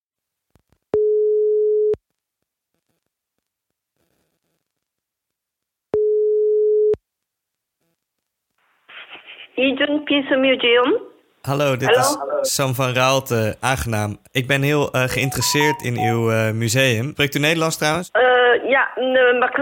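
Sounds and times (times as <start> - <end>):
phone line ringback tone: 1.0 - 2.0, 6.0 - 7.0, 15.2 - 16.2
speech: 9.6 - 19.6.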